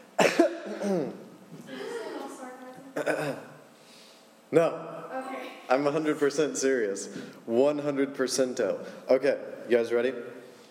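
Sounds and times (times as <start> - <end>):
person clearing throat: 0.2 - 1.3, 3.0 - 3.6
speech: 0.8 - 1.2, 4.5 - 4.9, 5.7 - 10.4.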